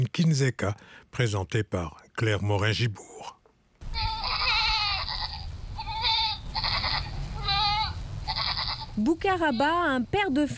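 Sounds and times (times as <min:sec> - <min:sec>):
speech: 0:00.0 - 0:03.4, 0:09.0 - 0:10.5
low outdoor rumble: 0:03.8 - 0:10.5
goats bleating while pulled out of an enclosure in Mozogo Cameroon: 0:03.9 - 0:09.8.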